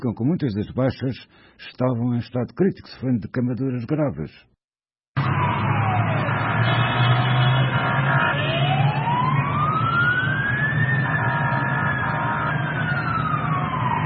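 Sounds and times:
speech: 0.0 - 4.5
fire engine and ambulance sirens wailing on the way to a burning train: 5.2 - 14.0
rush hour heavy traffic rumble: 5.2 - 14.0.

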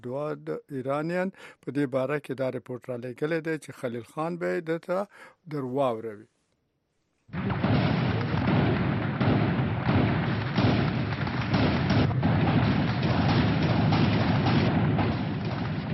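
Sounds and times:
speech: 0.0 - 6.4, 7.3 - 8.0
gunfire during a militant attack on government buildings in Ramadi: 7.3 - 15.9.

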